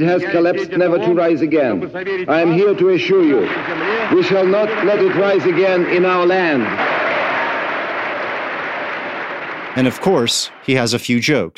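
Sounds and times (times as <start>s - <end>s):
speech: 0.0s - 7.0s, 9.8s - 11.5s
large crowd applauding: 2.3s - 11.2s.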